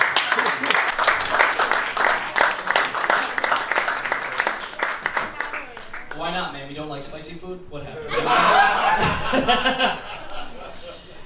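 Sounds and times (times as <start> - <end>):
moderate-sized audience applause: 0.0 - 6.3
laughter: 8.0 - 11.2.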